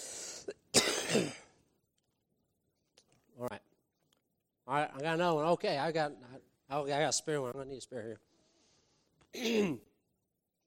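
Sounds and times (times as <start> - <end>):
short sharp cough: 0.4 - 1.6, 9.3 - 10.0
speech: 0.5 - 1.4, 3.4 - 3.6, 4.7 - 8.3, 9.3 - 9.9
rasping throat-clearing burst: 0.5 - 1.6, 9.3 - 10.0.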